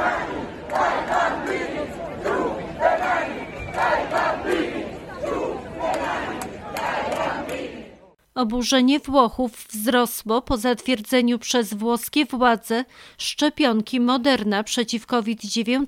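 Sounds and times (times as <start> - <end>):
large protest crowd chanting slogans in unison: 0.0 - 8.2
speech: 8.4 - 15.8.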